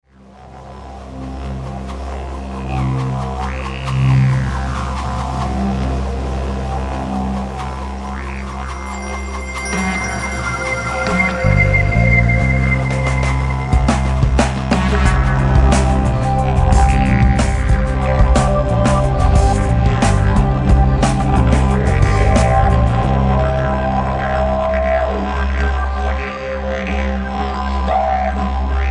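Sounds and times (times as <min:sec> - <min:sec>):
didgeridoo: 0:00.1 - 0:28.8.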